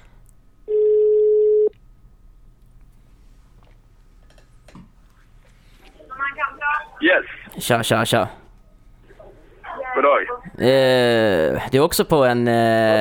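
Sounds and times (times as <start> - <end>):
outgoing phone call ringing tone: 0.7 - 1.7
speech: 7.1 - 8.4, 10.0 - 12.9.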